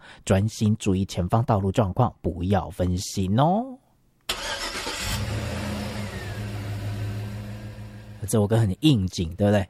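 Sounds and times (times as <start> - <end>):
speech: 0.2 - 3.8, 8.3 - 9.6
car engine starting: 4.3 - 8.3.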